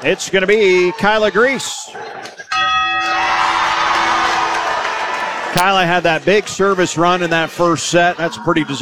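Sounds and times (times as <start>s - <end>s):
speech: 0.0s - 2.2s, 5.5s - 8.7s
crowd cheering and shouting: 0.0s - 8.7s
large victory bell rung after match: 2.5s - 4.9s.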